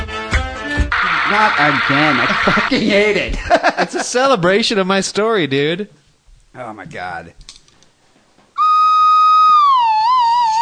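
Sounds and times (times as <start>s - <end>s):
laughter: 1.0s - 4.2s
speech: 1.3s - 6.0s, 6.6s - 7.4s
slide whistle blowing a sustained note: 8.6s - 10.6s.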